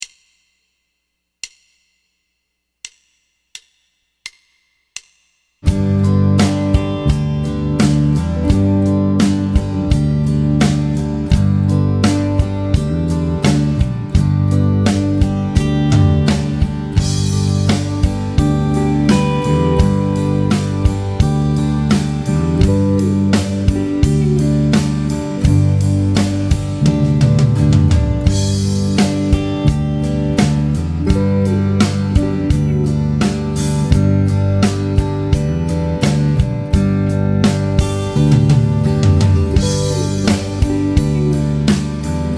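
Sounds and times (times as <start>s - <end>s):
G major triad vamp: 5.6s - 42.3s.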